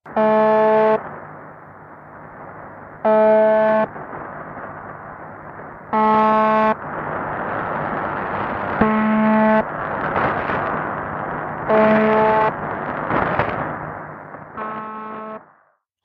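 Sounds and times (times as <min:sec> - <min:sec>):
shortwave radio static hiss and crackle: 0:00.0 - 0:15.7
harsh harmonic buzz tone from a shortwave radio station: 0:00.1 - 0:01.2, 0:03.0 - 0:04.0, 0:05.9 - 0:06.8, 0:08.4 - 0:09.7, 0:11.6 - 0:13.6, 0:14.5 - 0:15.7.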